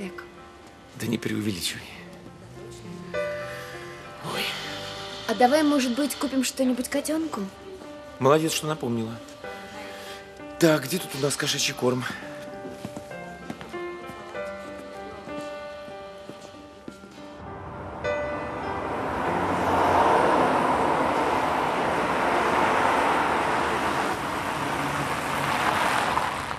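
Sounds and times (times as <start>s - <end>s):
speech: 1.0s - 2.0s, 5.3s - 7.6s, 8.2s - 9.3s, 10.6s - 12.3s
car engine and tyres rumbling as it pulls up to a hospital: 17.4s - 26.5s.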